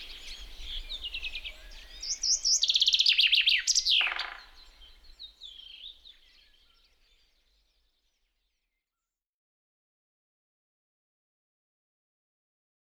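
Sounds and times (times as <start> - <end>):
common chaffinch song: 0.0 - 8.4.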